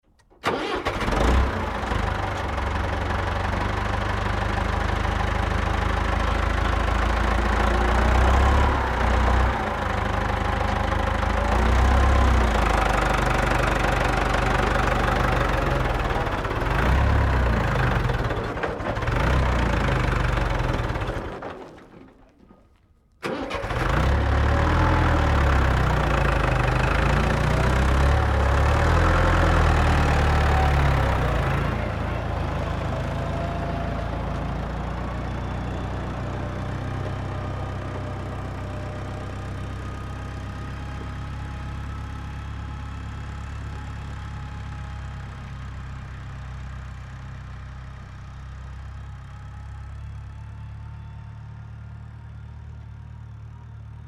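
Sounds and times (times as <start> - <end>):
farm tractor engine starting and stalling during a three-point turn: 0.0 - 54.0.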